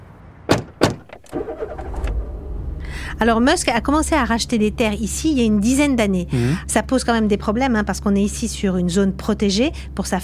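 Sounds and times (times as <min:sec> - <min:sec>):
car door thumps: 0:00.5 - 0:01.3
car engine starting and idling as the vehicle moves: 0:01.0 - 0:06.6
speech: 0:03.2 - 0:10.2.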